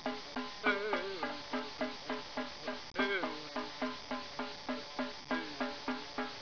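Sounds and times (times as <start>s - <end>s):
tom tom drum: 0.0s - 6.3s.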